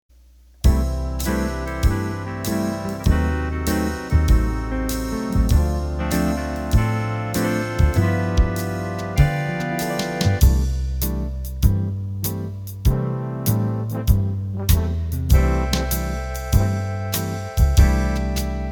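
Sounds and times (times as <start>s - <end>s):
slow big band music: 0.6s - 18.6s.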